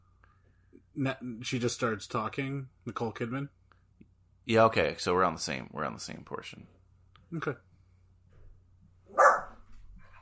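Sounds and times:
speech: 0:01.0 - 0:03.6, 0:04.5 - 0:07.7
dog bark movie sound effect: 0:09.1 - 0:09.6.

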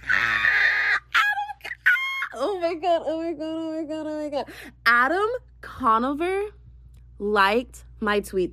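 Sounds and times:
loud excited high-pitched scream: 0:00.0 - 0:02.4
speech: 0:02.6 - 0:06.6, 0:07.2 - 0:08.5.

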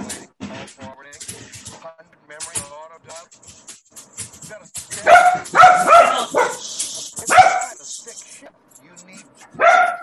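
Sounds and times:
dogs barking: 0:04.9 - 0:07.8, 0:09.4 - 0:10.0.

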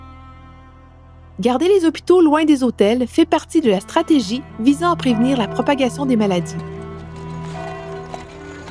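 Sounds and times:
speech: 0:01.4 - 0:06.8
black horses' hooves clip-clopping pulling an ambulance wagon: 0:05.0 - 0:08.6.

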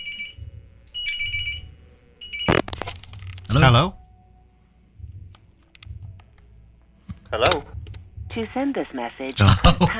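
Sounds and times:
electronic phone ringtone for incoming call: 0:00.0 - 0:00.4, 0:01.0 - 0:02.6
speech: 0:03.6 - 0:04.0, 0:08.4 - 0:09.9.

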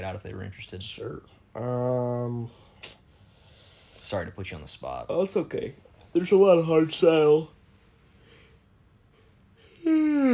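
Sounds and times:
speech: 0:00.0 - 0:03.0, 0:04.0 - 0:07.6
loud exaggerated cartoonish yawn: 0:09.6 - 0:10.3.

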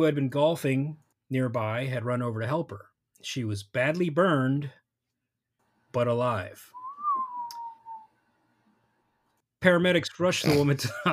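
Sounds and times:
speech: 0:00.0 - 0:04.8, 0:05.9 - 0:06.8, 0:09.6 - 0:11.1
short mid-pitched whistle: 0:06.7 - 0:08.1.

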